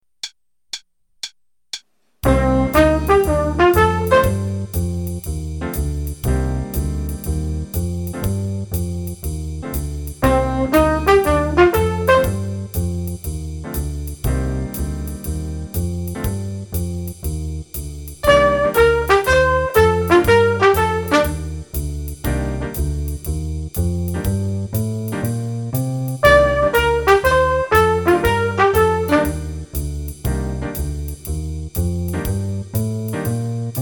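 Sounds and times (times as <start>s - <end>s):
trumpet: 2.2s - 4.8s, 10.2s - 12.8s, 18.2s - 21.7s, 26.2s - 29.7s
jazz improvisation in C minor: 2.2s - 33.8s.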